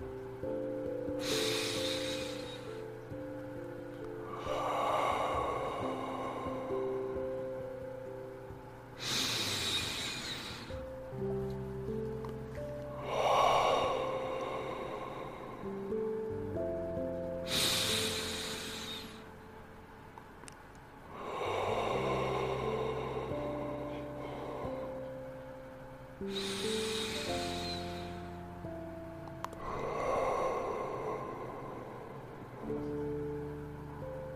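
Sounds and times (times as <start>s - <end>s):
sustained musical tones: 0.0s - 20.2s, 21.0s - 34.3s
steady low hum: 0.0s - 34.3s
slow breaths in through the nose and out through the mouth: 1.1s - 7.8s, 9.0s - 11.0s, 12.6s - 16.2s, 17.4s - 19.4s, 21.1s - 28.5s, 29.5s - 33.0s.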